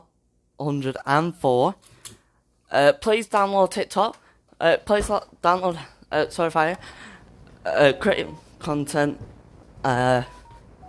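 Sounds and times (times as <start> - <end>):
speech: 0.6 - 2.0, 2.7 - 10.4
thin electronic tone: 9.9 - 10.8
buzzy electronic beep from a phone keypad: 10.2 - 10.8.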